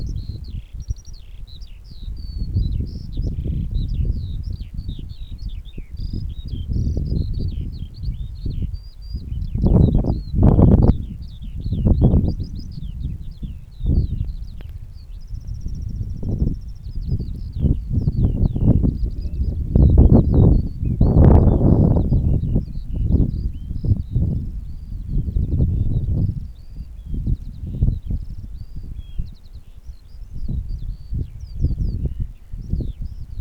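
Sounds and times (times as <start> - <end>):
skylark singing: 0.0 - 33.3.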